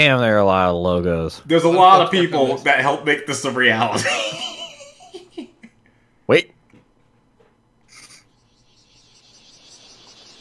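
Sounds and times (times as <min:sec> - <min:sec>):
speech: 0:00.0 - 0:04.5
cicadas buzzing in summer: 0:07.9 - 0:10.4.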